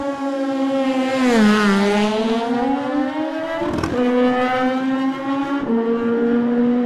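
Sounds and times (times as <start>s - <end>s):
Norton racing motorcycle engine roaring through gear changes at race start: 0.0s - 6.8s.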